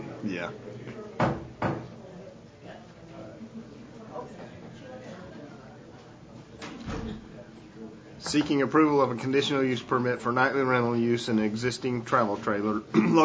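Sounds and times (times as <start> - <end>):
speech: 0.2 - 1.4, 8.2 - 13.2
door closing thuds: 6.6 - 7.3.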